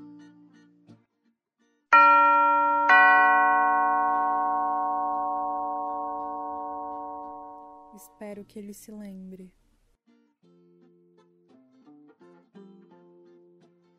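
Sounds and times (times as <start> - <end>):
two-tone doorbell chime: 2.0 - 8.0
speech: 8.3 - 9.6.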